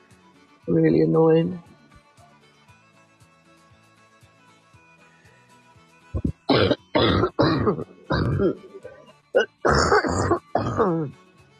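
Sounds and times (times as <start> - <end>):
speech: 0.7 - 1.7
harsh coughing: 6.2 - 11.1
throat clearing: 6.2 - 11.1.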